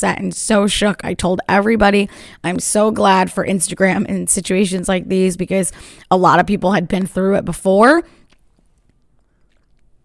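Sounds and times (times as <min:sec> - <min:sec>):
speech: 0:00.0 - 0:08.2
person sipping a drink: 0:08.1 - 0:10.0.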